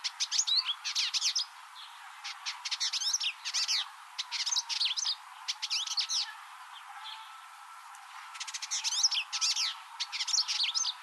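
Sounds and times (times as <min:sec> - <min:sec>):
Village indigobird Vidua chalybeata singing chattering bursts: 0:00.0 - 0:01.5, 0:02.2 - 0:06.4, 0:08.3 - 0:11.0.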